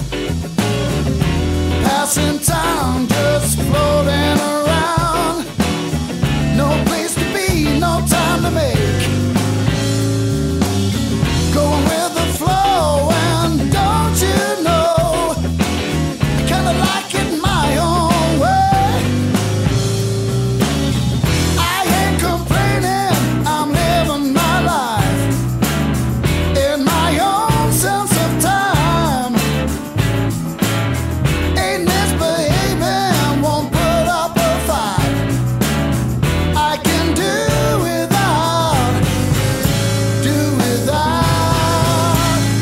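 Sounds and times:
deep bass line: 0.0s - 42.6s
full band playing a song: 0.0s - 42.6s
steady drums: 0.0s - 42.6s.

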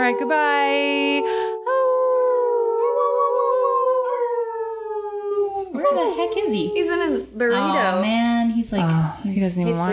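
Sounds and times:
people howling in imitation of dogs: 0.0s - 7.2s
speech: 0.1s - 1.5s, 5.9s - 9.9s.

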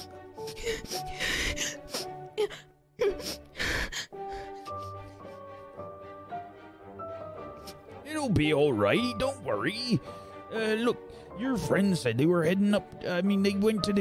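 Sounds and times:
person crying and wailing with gasping breaths: 0.5s - 4.2s
speech: 8.4s - 13.9s.

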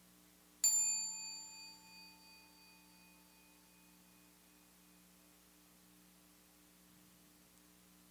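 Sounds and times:
faint steady hum: 0.0s - 8.0s
single meditation bell struck once, ringing: 0.6s - 5.3s.

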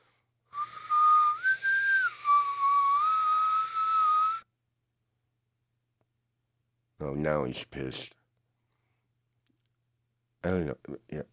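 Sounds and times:
single sustained whistled tone: 0.5s - 4.5s
speech: 7.0s - 8.2s, 10.4s - 11.3s.

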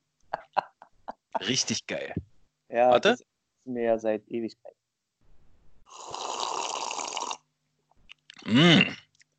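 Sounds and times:
laughter: 0.4s - 1.9s
speech: 1.4s - 4.8s, 8.5s - 9.0s
person slurping hot wild cherry black tea with sweetened condensed milk: 5.9s - 7.4s.

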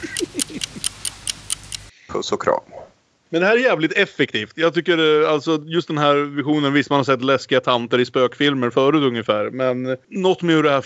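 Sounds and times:
laughter: 0.0s - 1.0s
clock ticking in a room: 0.0s - 1.9s
speech: 2.2s - 10.8s.

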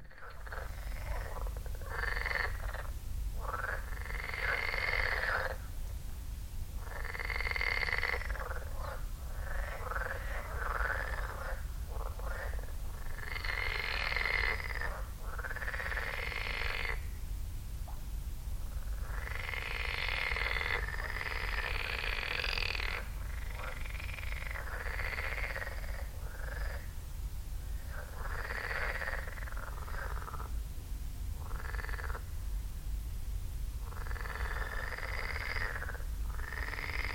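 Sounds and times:
chorus of frogs croaking by a lake in North Zealand Denmark: 0.0s - 5.7s, 6.8s - 17.2s, 18.6s - 27.0s, 27.6s - 30.6s, 31.4s - 32.4s, 33.8s - 37.1s
steady low rumble of wind by a lake: 0.0s - 37.1s.

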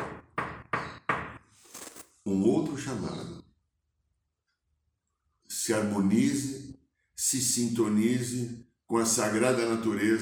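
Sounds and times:
knocking on a door: 0.0s - 1.4s
speech: 2.3s - 3.4s, 5.7s - 6.6s, 7.3s - 10.1s.

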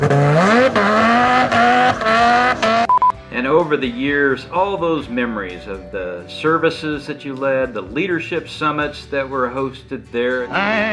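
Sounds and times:
souped-up Viper sports car engine revving through gear shifts: 0.0s - 2.9s
sports car tires squealing: 0.0s - 2.9s
speech: 3.6s - 10.9s.

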